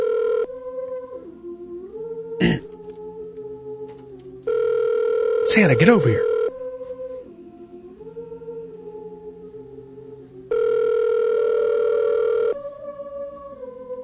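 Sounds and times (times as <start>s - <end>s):
electronic phone ringing tone heard through the line: 0.0s - 0.5s, 4.5s - 6.5s, 10.5s - 12.6s
speech: 5.6s - 6.3s.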